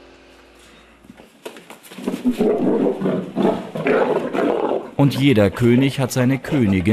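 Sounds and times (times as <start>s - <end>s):
one-year-old lion roaring behind thin bars in a village in Humpolec: 2.1s - 6.9s
speech: 2.3s - 4.4s, 5.0s - 6.9s.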